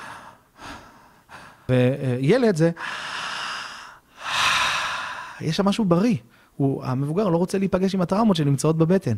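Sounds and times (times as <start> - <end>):
deep full inhale demonstrating belly breathing: 0.0 - 1.7, 2.8 - 5.4
speech: 1.7 - 3.0, 5.4 - 9.1
long airy exhale demonstrating belly breathing: 2.9 - 5.4.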